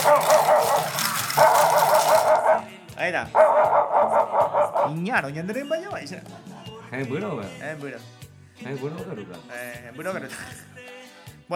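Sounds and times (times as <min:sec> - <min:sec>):
small dog barking during a bingo game: 0:00.0 - 0:02.7, 0:03.4 - 0:05.0
speech: 0:03.1 - 0:10.7.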